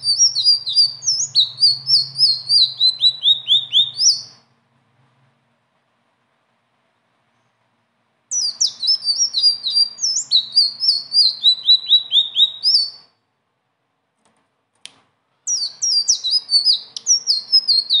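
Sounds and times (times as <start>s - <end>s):
blue-winged leafbird whistled song: 0.0s - 4.4s, 8.3s - 13.2s, 15.4s - 17.9s.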